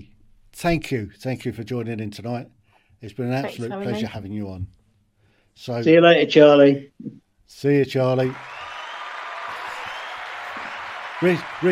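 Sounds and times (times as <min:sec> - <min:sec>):
speech: 0:00.6 - 0:04.8, 0:05.6 - 0:08.6, 0:11.2 - 0:11.7
crowd applauding: 0:03.4 - 0:04.0, 0:08.0 - 0:11.7.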